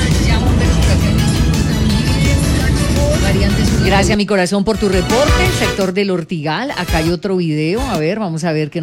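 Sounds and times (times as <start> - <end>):
fire truck heavy engine rumbling with mechanical whine: 0.0 - 4.2
speech: 3.9 - 8.8.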